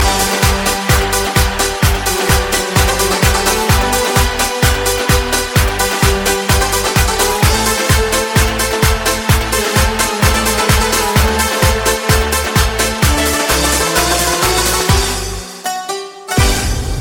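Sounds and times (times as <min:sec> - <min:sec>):
Greek dance music ringtone: 0:00.0 - 0:16.6.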